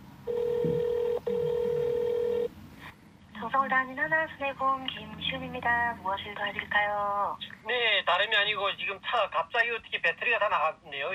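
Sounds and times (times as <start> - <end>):
telephone ringing tone on the line during a call to a car insurance company: 0.2 - 2.5
speech: 3.6 - 11.1.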